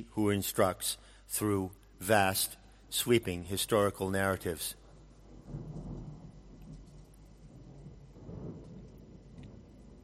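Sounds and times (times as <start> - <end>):
speech: 0.0 - 4.8, 5.5 - 5.8
deep rolling thunder over a river valley: 4.8 - 10.0
torrential rain over a river valley: 5.3 - 10.0.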